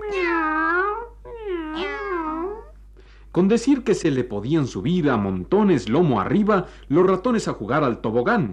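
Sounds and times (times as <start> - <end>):
cat meowing: 0.0 - 2.7
speech: 3.4 - 8.5.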